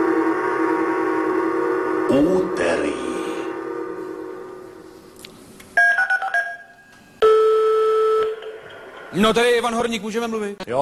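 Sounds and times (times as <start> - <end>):
faint hum: 0.0 - 10.6
speech: 2.1 - 3.1, 9.2 - 10.8
telephone keypad dialing tones: 5.8 - 8.4.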